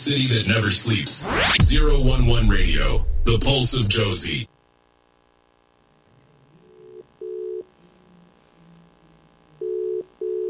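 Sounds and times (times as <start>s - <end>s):
speech: 0.0s - 4.5s
quiet telephone line hiss: 0.8s - 4.5s
telephone ringing tone heard down the line: 6.8s - 7.6s, 9.6s - 10.4s.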